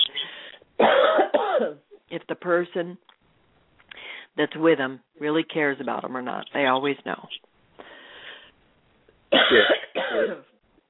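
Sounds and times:
loud harsh coughs: 0.8 - 1.8, 9.3 - 10.5
soft raspy throat clearing: 0.8 - 1.8, 9.4 - 10.5
speech: 2.3 - 3.1, 4.4 - 7.5, 9.5 - 10.5.

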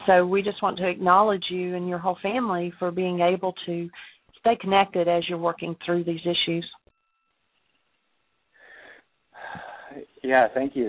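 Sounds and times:
speech: 0.0 - 6.8, 9.5 - 10.8
deep slow soft airy breath: 8.5 - 10.1.

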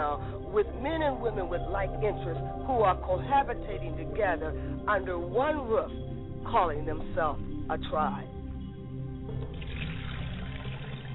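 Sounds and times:
speech: 0.5 - 8.4
libation liquid pouring and splashing onto the ground: 9.5 - 11.1.

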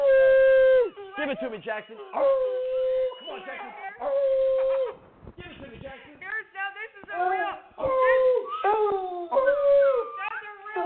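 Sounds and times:
dog howling: 0.0 - 5.0, 7.9 - 10.8
speech: 1.3 - 6.1.

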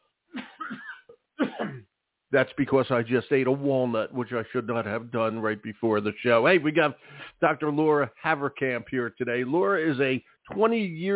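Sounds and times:
throat clearing: 0.4 - 1.8
speech: 2.3 - 11.1.

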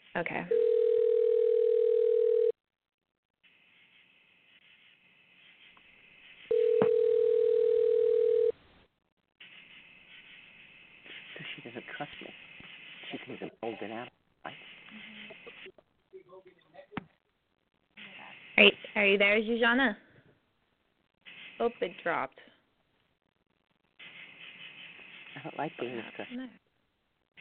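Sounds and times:
speech: 0.2 - 0.8, 19.1 - 20.0, 21.6 - 22.5, 25.5 - 26.6
telephone call ringing tone: 0.5 - 2.6, 6.5 - 8.6.

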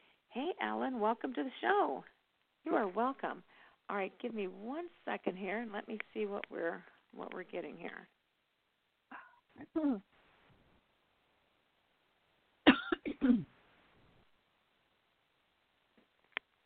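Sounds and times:
speech: 0.4 - 8.2, 9.6 - 10.1, 13.2 - 13.5
two people on a phone call coughing and clearing their throats: 12.7 - 13.5.

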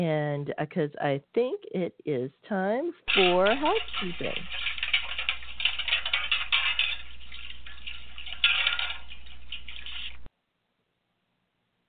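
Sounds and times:
speech: 0.0 - 4.7
metal plates washed in a metal wash tub on the stove: 3.1 - 10.3
water sloshing in a metal wash tub: 3.1 - 10.3.

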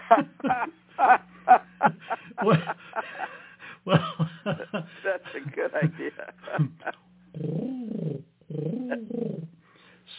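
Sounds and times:
laughter: 0.0 - 7.1
speech: 0.1 - 7.6
person imitating a dove's cooing: 7.3 - 9.6.

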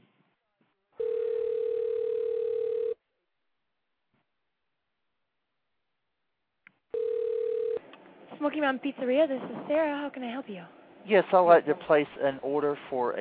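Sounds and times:
ringback tone of a phone call to a pizzeria: 1.0 - 3.0, 7.0 - 7.8
speech: 8.4 - 13.1.

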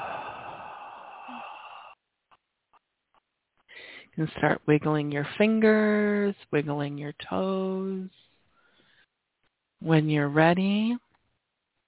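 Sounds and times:
slow deep exhale after holding the breath during a guided relaxation exercise: 0.0 - 2.0
speech: 4.2 - 8.3, 9.8 - 11.0.

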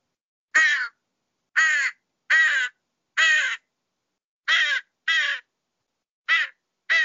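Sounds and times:
crow cawing: 0.6 - 1.0, 1.6 - 3.7, 4.5 - 5.5, 6.3 - 7.0.

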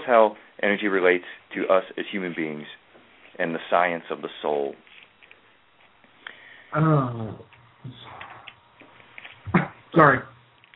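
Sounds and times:
speech: 0.0 - 2.8, 3.4 - 4.8, 6.7 - 8.2, 10.0 - 10.3
faint small sounds: 2.2 - 10.7
single loud abrupt cough: 9.5 - 9.8.

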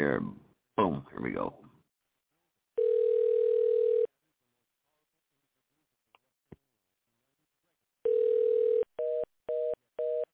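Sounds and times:
speech: 0.0 - 1.6
steady phone tone during a call to an invalid California number: 2.8 - 4.1, 8.1 - 10.3.

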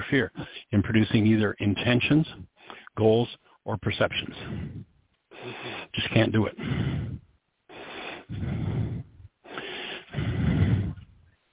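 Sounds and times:
speech: 0.1 - 4.8, 5.4 - 6.9
slow deep breaths drawn in and pushed out: 2.5 - 3.6, 4.3 - 11.4.

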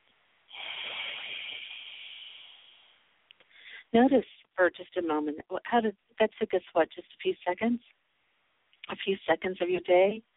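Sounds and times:
long exhale through the nose: 0.5 - 3.9
speech: 3.9 - 8.0, 8.9 - 10.3.

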